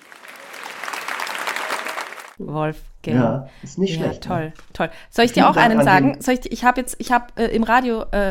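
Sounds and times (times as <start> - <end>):
crowd clapping: 0.0 - 2.4
speech: 2.4 - 8.2.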